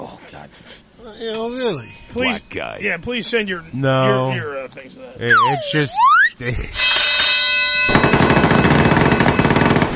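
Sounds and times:
speech: 0:00.3 - 0:07.0
bell sound effect ringing with a bright sustained tone: 0:01.3 - 0:03.1, 0:06.7 - 0:09.6
loud rapid burst of machine-gun fire: 0:07.9 - 0:09.9.

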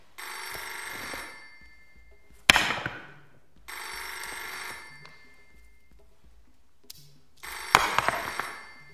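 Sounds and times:
telephone bell ringing: 0:00.2 - 0:03.1, 0:03.7 - 0:05.9, 0:07.4 - 0:08.9.

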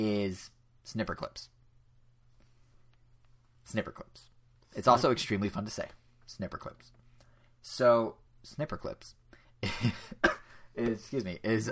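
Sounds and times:
speech: 0:00.0 - 0:01.6, 0:03.7 - 0:07.0, 0:07.6 - 0:11.7
person laughing: 0:09.6 - 0:10.6
person coughing after a laugh: 0:09.6 - 0:10.7.

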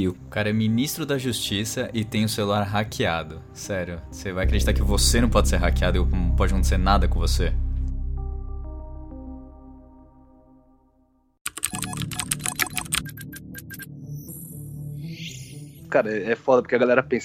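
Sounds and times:
speech: 0:00.0 - 0:07.6, 0:15.9 - 0:17.2
low droning hum: 0:04.4 - 0:09.4
frantic typing on a laptop keyboard: 0:11.5 - 0:13.3.

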